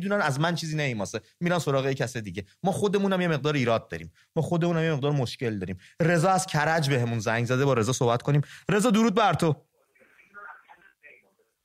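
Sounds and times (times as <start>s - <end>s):
speech: 0.0s - 9.7s
television voices over a tinny phone line: 9.8s - 11.6s.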